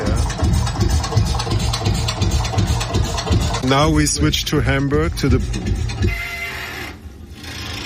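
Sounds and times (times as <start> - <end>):
low rumble: 0.0 - 6.3
speech: 3.7 - 6.2
grinding metallic squeal from a bridge in Hamburg, Germany: 5.6 - 7.8.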